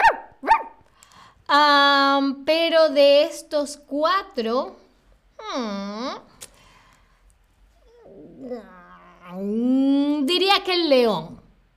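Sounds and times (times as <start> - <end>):
dog barking: 0.0 - 0.8
speech: 1.5 - 4.8, 5.4 - 6.3, 8.4 - 11.4.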